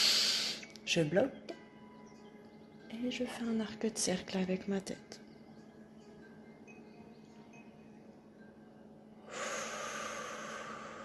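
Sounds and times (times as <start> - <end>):
speech: 0.9 - 1.5, 2.9 - 5.2
person exhaling during a breathing exercise: 9.3 - 11.0.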